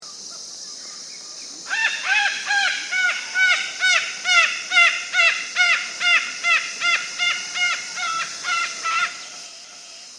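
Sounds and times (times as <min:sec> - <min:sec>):
Cacatua ophthalmica calling: 0:01.7 - 0:09.8.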